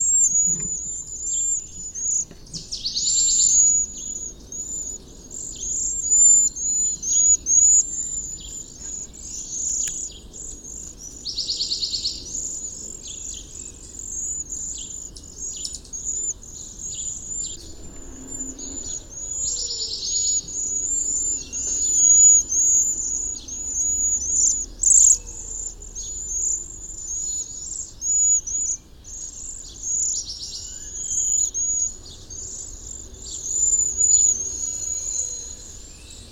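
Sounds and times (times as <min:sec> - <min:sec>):
Cedar Waxwing Bombycilla cedrorum calling: 0:00.0 - 0:36.3.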